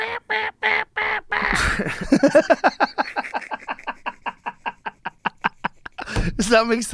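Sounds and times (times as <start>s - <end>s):
voice imitating duck-like bird call quacks: 0.0s - 1.7s
laughter: 1.4s - 6.2s
speech: 1.6s - 3.0s, 6.5s - 6.9s.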